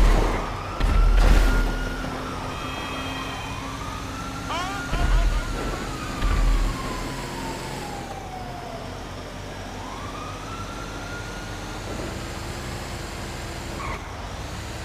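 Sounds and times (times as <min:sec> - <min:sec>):
police siren in a video game wailing: 0:00.0 - 0:12.2
thumping bursts: 0:04.7 - 0:07.2.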